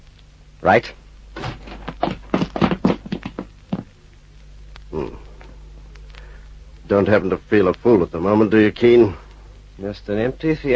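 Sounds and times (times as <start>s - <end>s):
speech: 0.6s - 1.0s, 6.9s - 9.2s, 9.8s - 10.7s
ground-floor door to an office flung open: 1.4s - 2.2s.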